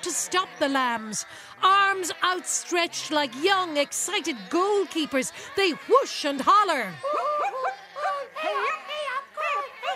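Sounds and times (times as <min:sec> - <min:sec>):
speech: 0:00.0 - 0:07.5
laughter: 0:00.0 - 0:09.9
three-legged dog whimpering and yipping: 0:07.0 - 0:09.9.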